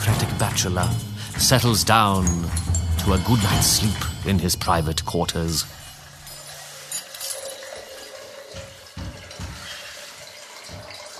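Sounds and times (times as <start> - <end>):
brief knocks: 0.0 - 5.8, 8.5 - 9.9, 10.6 - 11.1
speech: 0.2 - 5.8
water pouring into a hot water bottle: 5.9 - 11.1.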